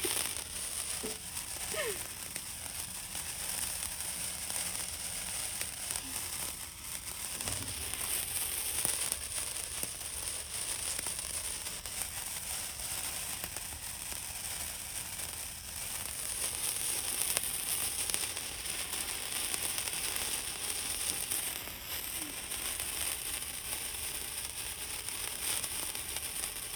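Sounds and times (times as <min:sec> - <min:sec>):
fireworks crackling and fizzing at night: 0:00.0 - 0:26.7
faint voices: 0:01.0 - 0:02.1.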